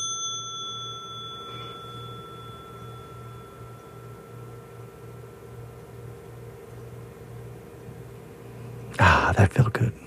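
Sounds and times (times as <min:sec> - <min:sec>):
mindfulness bell struck and ringing: 0:00.0 - 0:07.3
faint steady drone: 0:00.0 - 0:10.0
speech: 0:09.4 - 0:10.0.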